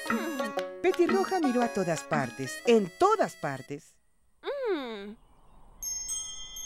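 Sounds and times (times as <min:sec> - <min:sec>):
short gliding vocal exclamation: 0:00.1 - 0:00.6, 0:04.5 - 0:05.2
speech: 0:00.9 - 0:04.0
small bells jingling: 0:05.8 - 0:06.6.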